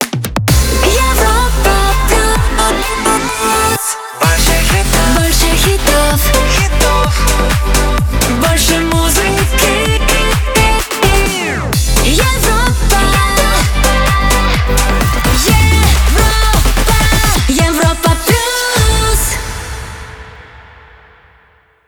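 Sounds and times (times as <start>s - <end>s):
up tempo dance music mix: 0.0s - 20.8s.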